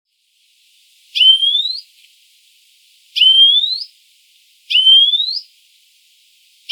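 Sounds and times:
European greenfinch giving long nasal rising calls: 1.2s - 2.0s, 3.2s - 3.9s, 4.7s - 5.5s.

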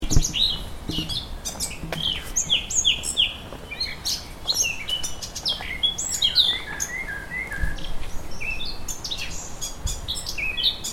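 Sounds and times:
Eurasian blackcap Sylvia atricapilla warbled song: 0.0s - 10.9s.

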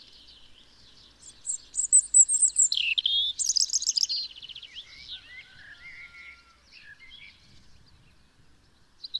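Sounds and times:
European robin Erithacus rubecula singing: 1.2s - 6.4s.

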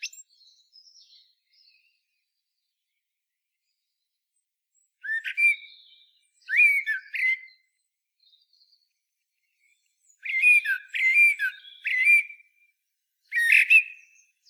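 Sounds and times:
Common blackbird singing Turdus merula: 0.0s - 2.4s, 4.8s - 14.4s.

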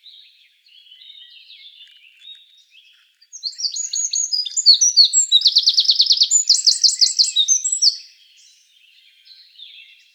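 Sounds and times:
Eurasian wren Troglodytes troglodytes singing high notes and fast rattling trills: 3.3s - 8.0s.

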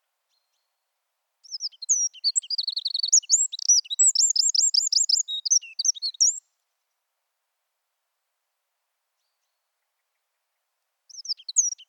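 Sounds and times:
Eurasian wren Troglodytes troglodytes singing: 1.4s - 6.4s, 11.1s - 11.8s.

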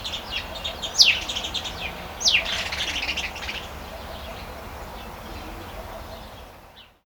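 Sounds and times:
house sparrow Passer domesticus giving sharp downslurred chirps: 0.0s - 5.1s.

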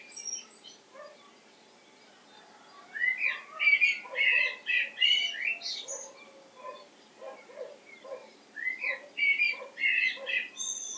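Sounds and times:
common blackbird Turdus merula chattering: 3.1s - 10.9s.

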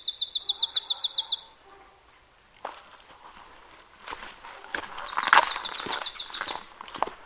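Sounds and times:
marsh tit Poecile palustris trilling: 0.0s - 1.5s, 4.9s - 6.7s
rustling: 1.7s - 7.2s
footstep-like crunches: 2.6s - 7.2s.

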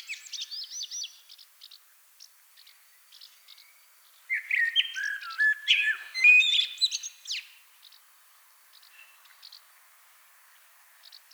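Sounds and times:
common blackbird Turdus merula singing: 0.0s - 1.2s, 4.3s - 7.5s.

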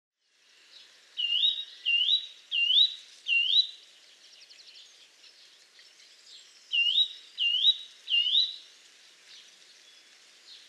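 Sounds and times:
Eurasian nuthatch Sitta europaea calling with upslurred whistles: 1.2s - 3.8s, 6.7s - 8.6s.

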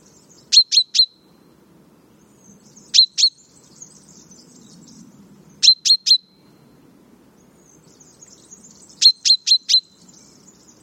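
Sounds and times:
Common chaffinch Fringilla coelebs giving sharp high falling notes: 0.0s - 1.3s, 2.4s - 6.4s, 7.6s - 10.8s.

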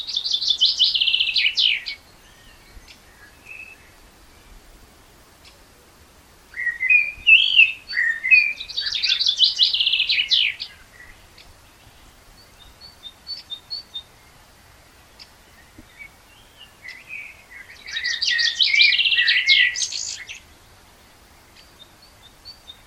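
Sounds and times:
Common blackbird singing, Turdus merula: 0.0s - 4.6s, 6.5s - 14.4s, 15.1s - 20.5s.

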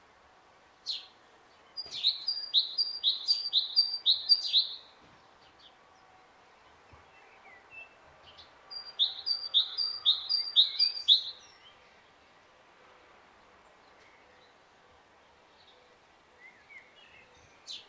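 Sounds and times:
great tit Parus major singing a two-note phrase: 1.6s - 4.9s, 8.4s - 11.8s.

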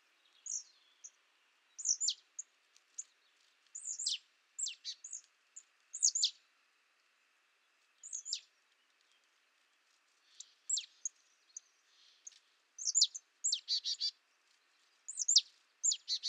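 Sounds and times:
marsh tit Poecile palustris calling: 1.8s - 3.1s, 3.8s - 5.3s, 5.9s - 6.4s, 8.0s - 8.5s, 10.3s - 11.2s, 12.0s - 14.2s, 15.1s - 16.2s.

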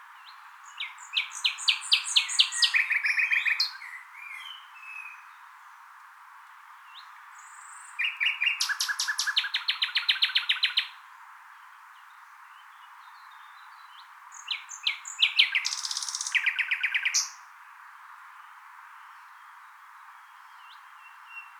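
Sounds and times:
common nightingale Luscinia megarhynchos singing: 0.2s - 5.3s, 6.9s - 11.0s, 13.1s - 17.4s.

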